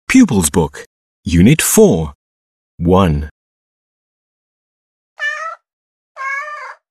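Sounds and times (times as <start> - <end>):
speech: 0.1 - 2.2, 2.8 - 3.3
cat meowing: 5.2 - 6.9.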